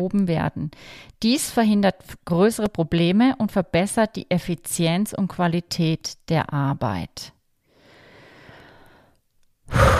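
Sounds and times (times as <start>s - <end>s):
speech: 0.0s - 7.4s
short breath: 0.8s - 1.2s, 7.6s - 9.9s.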